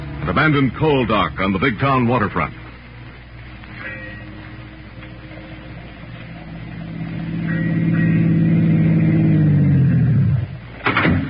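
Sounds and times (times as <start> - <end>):
car engine approaching and stopping: 0.0 - 11.2
speech: 0.2 - 2.6.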